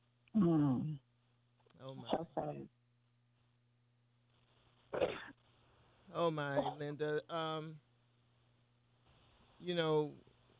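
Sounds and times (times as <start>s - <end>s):
speech: 2.4s - 2.8s, 6.3s - 7.9s, 9.6s - 10.3s
sneeze: 5.0s - 5.4s.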